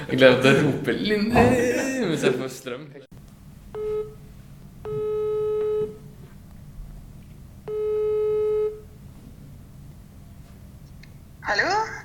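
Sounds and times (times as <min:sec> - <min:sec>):
low hum: 0:00.0 - 0:12.0
speech: 0:00.1 - 0:03.1
laughter: 0:01.3 - 0:02.5
telephone ringing tone before a call connects: 0:03.8 - 0:04.2, 0:04.8 - 0:06.0, 0:07.7 - 0:08.9.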